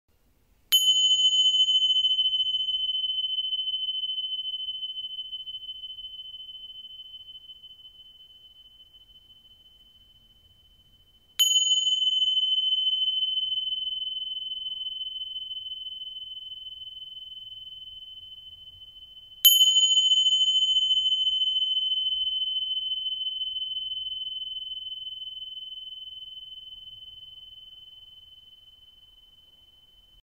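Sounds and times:
tingsha cymbals ringing: 0.7s - 30.2s.

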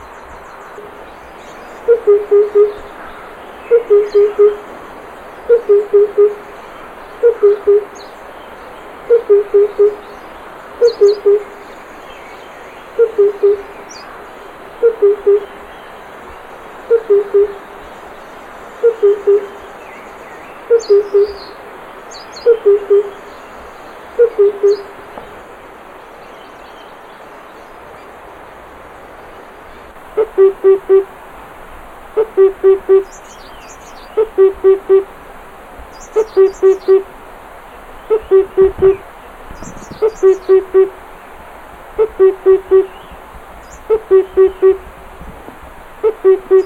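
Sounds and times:
Himalayan cuckoo calling: 1.7s - 4.8s, 5.4s - 8.0s, 9.1s - 10.1s, 10.8s - 11.6s, 12.9s - 14.0s, 14.8s - 15.6s, 16.9s - 17.8s, 18.8s - 19.7s, 20.6s - 21.6s, 22.4s - 23.3s, 24.2s - 25.3s, 30.1s - 31.2s, 32.2s - 33.4s, 34.0s - 35.2s, 36.0s - 37.1s, 38.0s - 39.0s, 39.6s - 41.0s, 42.0s - 43.1s, 43.8s - 44.9s, 46.0s - 46.6s.

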